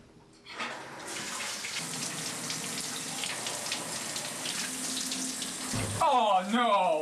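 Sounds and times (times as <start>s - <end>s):
shower water running in a hissing spray: 0.7s - 6.2s
speech: 5.7s - 7.0s.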